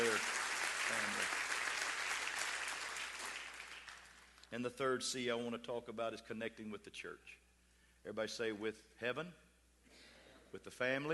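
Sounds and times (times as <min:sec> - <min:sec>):
church congregation clapping during a sermon: 0:00.0 - 0:04.5
speech: 0:04.5 - 0:07.4, 0:08.0 - 0:11.1.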